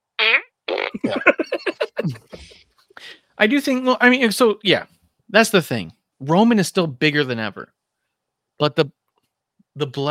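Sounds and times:
fart sound effect: 0:00.2 - 0:01.2
laughter: 0:01.0 - 0:02.5
speech: 0:03.4 - 0:07.8, 0:08.6 - 0:09.0, 0:09.8 - 0:10.1.

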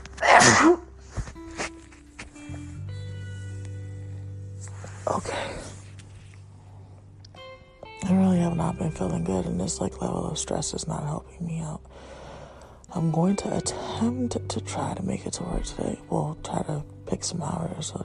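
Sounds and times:
loud sneeze: 0:00.2 - 0:00.9
soft breathy sound: 0:02.2 - 0:07.2, 0:11.9 - 0:12.9
speech: 0:09.0 - 0:11.9, 0:13.0 - 0:18.0.

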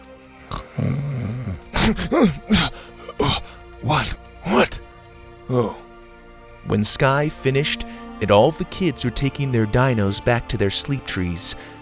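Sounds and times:
sharp breathy snorts: 0:00.3 - 0:05.9
person imitating a drawn-out rumbling snore: 0:00.4 - 0:04.8, 0:05.5 - 0:05.8
startled groan of a man waking: 0:00.4 - 0:06.0
speech: 0:00.5 - 0:01.1, 0:01.9 - 0:02.9, 0:03.8 - 0:04.8, 0:05.5 - 0:05.8, 0:06.6 - 0:11.8.

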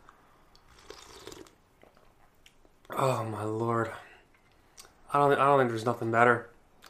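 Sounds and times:
sipping a drink with wet slurping and swallowing: 0:00.5 - 0:03.0
speech: 0:03.0 - 0:04.0, 0:05.1 - 0:06.8.

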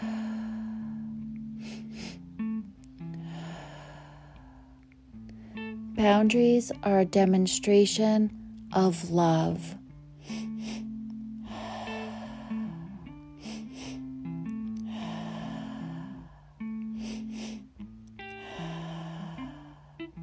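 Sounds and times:
patterned breath-work breathing in a guided session: 0:00.0 - 0:05.9, 0:10.1 - 0:20.2
soft sustained music tones: 0:00.0 - 0:20.2
speech: 0:06.0 - 0:09.8.

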